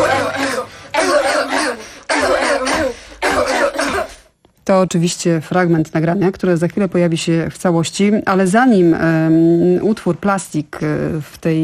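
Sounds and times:
person coughing in rough voiced bursts: 0.0s - 4.3s
speech: 4.8s - 11.6s.

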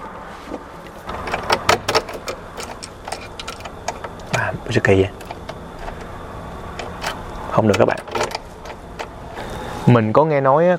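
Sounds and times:
key tried in a door lock at an old fort in Goliad, Texas: 1.1s - 4.4s, 5.1s - 9.2s
speech: 4.7s - 5.2s, 7.6s - 8.2s, 9.8s - 10.7s.

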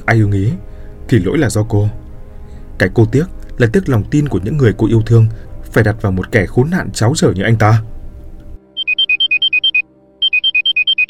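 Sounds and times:
speech: 0.1s - 2.0s, 2.8s - 7.9s
mobile phone ringing with an electronic ringtone of warbling two-note beeps: 8.7s - 11.0s.

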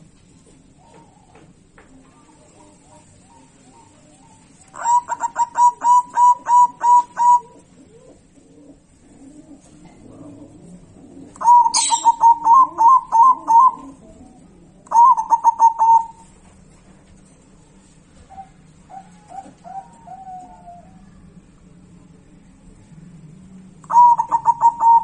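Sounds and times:
zebra dove singing pulsed coos: 0.0s - 16.4s, 18.2s - 21.5s, 23.8s - 25.0s.

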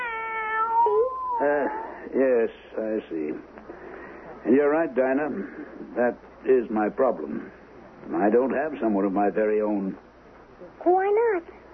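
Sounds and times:
cat meowing: 0.0s - 1.8s
speech: 1.4s - 3.7s, 4.4s - 10.0s, 10.6s - 11.6s.

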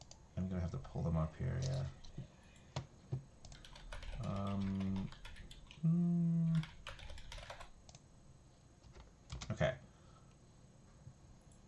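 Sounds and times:
speech: 0.5s - 2.3s, 4.3s - 5.2s, 5.8s - 6.8s
computer keyboard typing: 3.4s - 5.8s, 6.5s - 8.0s, 8.8s - 9.6s.

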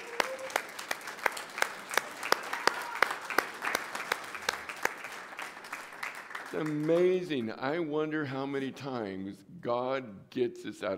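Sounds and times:
church congregation applauding: 0.0s - 7.5s
speech: 6.5s - 10.9s.

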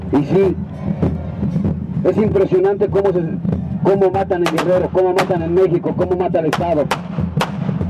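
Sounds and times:
speech: 0.1s - 7.0s
firework rockets exploding: 6.9s - 7.7s.

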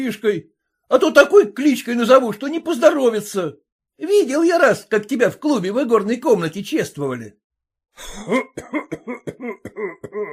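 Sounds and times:
speech: 0.0s - 7.4s, 8.0s - 10.3s
man coughing: 8.0s - 10.3s.

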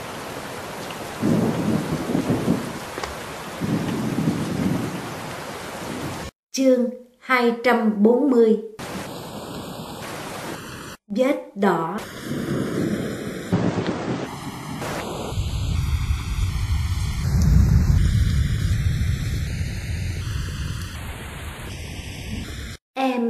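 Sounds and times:
rain and wind storm howling outside a window: 0.0s - 6.3s, 8.8s - 11.0s, 12.0s - 22.8s
speech: 6.6s - 8.7s, 11.2s - 12.5s.

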